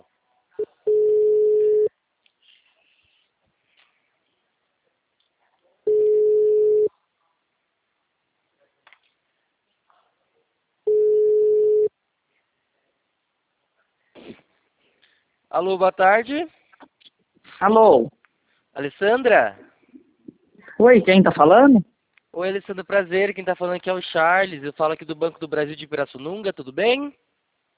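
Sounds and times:
telephone ringing tone while a call is placed: 0.6 - 1.9, 5.9 - 6.9, 10.9 - 11.9
speech: 15.6 - 16.6, 17.6 - 18.2, 18.8 - 19.7, 20.8 - 27.3.

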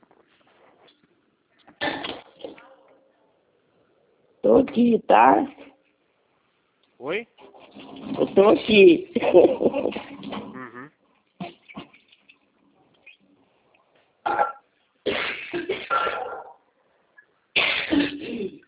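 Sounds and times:
speech: 4.6 - 5.6, 8.2 - 10.0
person coughing harshly during an allergy attack in cold weather: 17.6 - 18.6.

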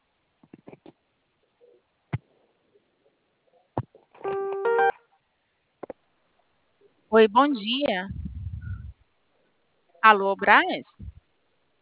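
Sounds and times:
telephone keypad tone after pressing zero on an automated loan-approval call: 4.3 - 4.9
speech: 7.1 - 8.2, 10.0 - 10.9.

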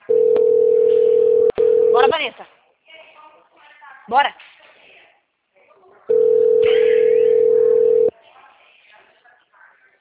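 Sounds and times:
telephone ringback tone on an outgoing call: 0.0 - 2.2, 6.1 - 8.1
faint noise: 0.0 - 9.9
speech: 4.1 - 4.5.

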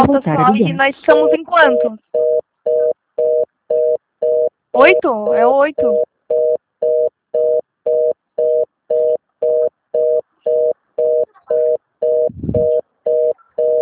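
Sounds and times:
speech: 0.1 - 2.3, 4.8 - 6.1
telephone busy signal: 1.1 - 13.7
low rumble: 12.3 - 12.8.

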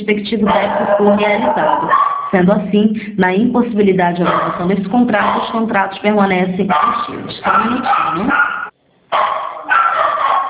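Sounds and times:
speech: 0.0 - 8.4
dogs barking: 0.4 - 2.4, 4.1 - 10.4.

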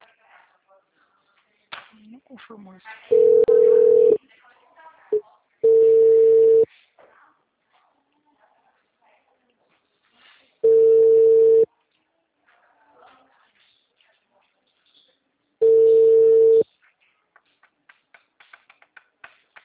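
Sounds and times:
speech: 2.0 - 3.2
telephone tone beeps after a dropped call: 3.1 - 4.2, 5.6 - 6.6, 10.6 - 11.7, 15.6 - 16.6.

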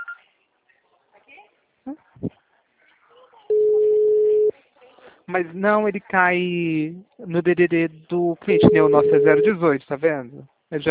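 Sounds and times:
speech: 1.8 - 2.0, 5.3 - 10.8
telephone tone during a call: 3.5 - 4.5, 8.5 - 9.5.

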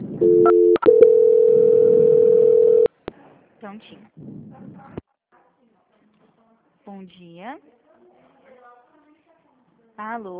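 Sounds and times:
speech: 0.2 - 0.8, 7.0 - 7.8, 10.0 - 10.3
two-note telephone tone during a call transfer: 0.2 - 2.9.

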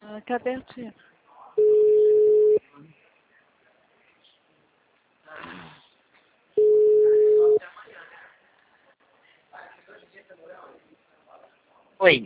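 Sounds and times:
speech: 0.3 - 1.7, 12.0 - 12.2
telephone tone beeps after a dropped call: 1.6 - 2.6, 6.6 - 7.6.

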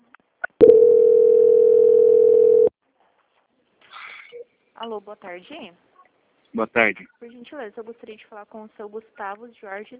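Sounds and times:
telephone line tone during a call transfer to a bank: 0.6 - 2.7
speech: 4.8 - 5.9, 6.5 - 9.9.

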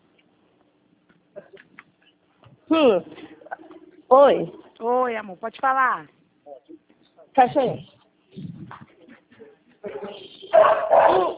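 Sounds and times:
speech: 2.7 - 3.2, 4.1 - 6.2, 7.4 - 7.9
dog barking loudly: 9.9 - 11.3.

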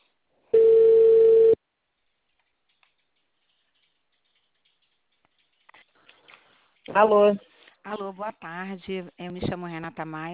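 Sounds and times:
telephone ringback tone on an outgoing call: 0.6 - 1.6
speech: 6.9 - 10.3.

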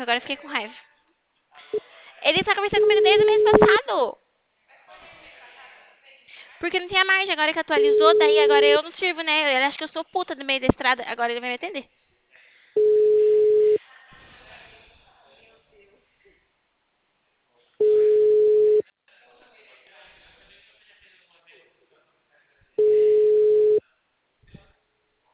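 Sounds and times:
speech: 0.0 - 0.9, 1.7 - 4.2, 6.6 - 12.0
telephone busy signal: 2.8 - 3.8, 7.8 - 8.7, 12.8 - 13.8, 17.8 - 18.8, 22.8 - 23.8.

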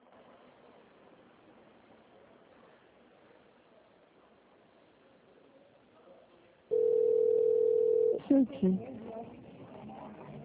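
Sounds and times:
steady mid-pitched telephone hold tone while call is transferred: 6.7 - 8.3.

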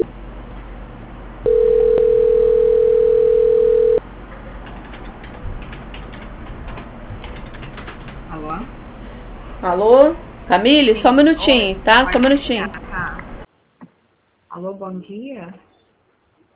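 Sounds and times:
telephone call-transfer tone beep: 1.5 - 4.0
thin phone-line hiss: 1.5 - 4.0
speech: 9.6 - 12.8, 14.6 - 15.7.

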